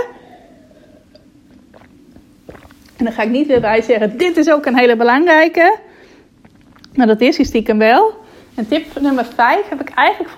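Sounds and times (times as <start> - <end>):
wet mouth and swallowing sounds: 0.1 - 3.8, 6.2 - 7.0
person sipping water: 0.2 - 3.3, 6.0 - 7.0
speech: 3.0 - 5.9, 7.0 - 10.3.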